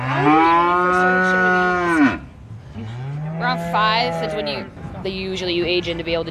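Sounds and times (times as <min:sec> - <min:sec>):
cow mooing: 0:00.0 - 0:04.7
speech: 0:04.0 - 0:06.2.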